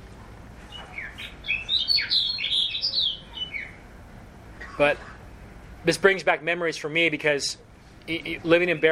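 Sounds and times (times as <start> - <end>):
snow bunting singing: 0.6 - 3.9
speech: 4.8 - 5.1, 5.8 - 8.9.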